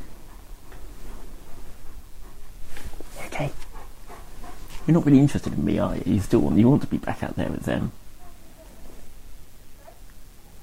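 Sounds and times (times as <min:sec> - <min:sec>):
dog's rustling burst of movement: 0:00.0 - 0:06.3, 0:08.0 - 0:09.4
German Shepherd panting in a room: 0:00.0 - 0:06.8
speech: 0:04.9 - 0:08.0.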